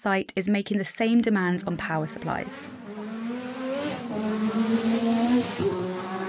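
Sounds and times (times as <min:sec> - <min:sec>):
speech: 0:00.0 - 0:03.1
Formula One racing car engine accelerating: 0:02.0 - 0:06.2.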